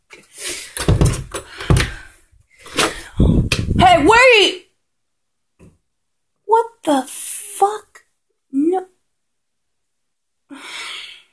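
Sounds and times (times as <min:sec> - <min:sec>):
heavy irregular knocking on a door: 0:00.9 - 0:01.9
speech: 0:03.2 - 0:04.6, 0:06.6 - 0:07.8.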